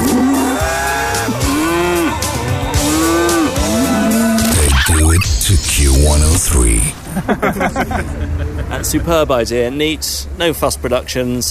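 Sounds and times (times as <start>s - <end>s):
cows mooing in long drawn-out calls: 0.0s - 4.4s
steady noise: 4.4s - 11.4s
speech: 6.0s - 11.4s
laughter: 7.0s - 8.9s.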